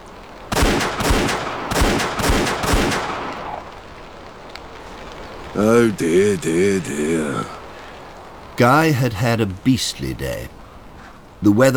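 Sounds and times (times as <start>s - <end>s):
rifle shots at a shooting practice: 0.5s - 3.9s
speech: 5.6s - 7.6s, 8.6s - 10.6s, 11.4s - 11.7s.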